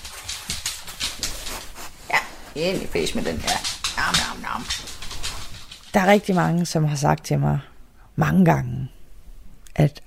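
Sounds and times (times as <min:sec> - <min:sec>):
dogs snuffling and licking at dropped biscuit crumbs: 0:00.0 - 0:06.8
speech: 0:02.6 - 0:05.0, 0:06.0 - 0:09.0, 0:09.8 - 0:10.0.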